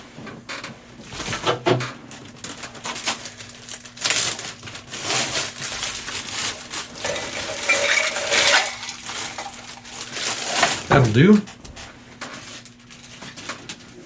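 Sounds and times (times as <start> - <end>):
chunks of ice clattering into a metal shaker tin: 2.8 - 10.9
speech: 11.1 - 11.6.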